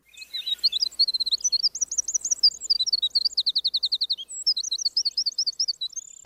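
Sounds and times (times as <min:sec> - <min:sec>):
Cordillera Azul antbird song: 0:00.0 - 0:06.2.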